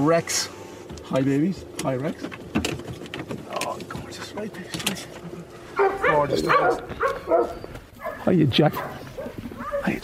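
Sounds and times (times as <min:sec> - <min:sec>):
speech: 0:00.0 - 0:02.7, 0:04.2 - 0:09.1
rescued dog barking and yipping: 0:05.7 - 0:10.0.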